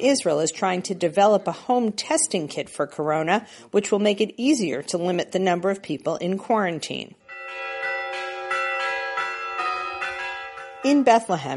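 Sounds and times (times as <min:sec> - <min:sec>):
speech: 0:00.0 - 0:07.2, 0:10.8 - 0:11.5
church bells ringing in overlapping peals: 0:07.2 - 0:11.5.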